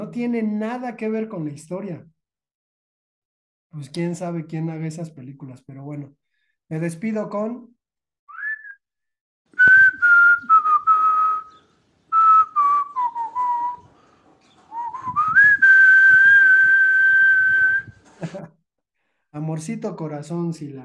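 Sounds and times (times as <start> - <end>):
speech: 0.1 - 2.2, 3.7 - 7.8, 19.4 - 20.8
person whistling a song melody: 8.3 - 8.8, 9.6 - 13.8, 14.7 - 18.0.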